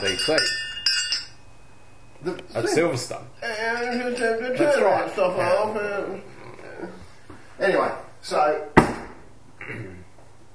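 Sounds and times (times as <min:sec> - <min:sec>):
speech: 0:00.0 - 0:00.6, 0:02.2 - 0:07.0, 0:07.6 - 0:08.8, 0:09.7 - 0:10.0
crystal decanter clinking: 0:00.0 - 0:02.2, 0:03.4 - 0:05.6.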